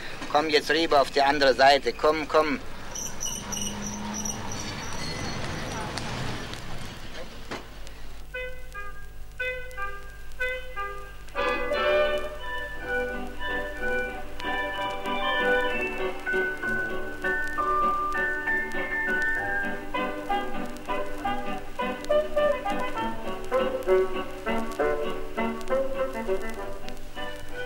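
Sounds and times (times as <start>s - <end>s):
faint crackling hiss of a gramophone record: 0.0s - 27.6s
speech: 0.3s - 2.7s
tinkly old-fashioned music from a gramophone record at a music shop: 8.2s - 27.6s.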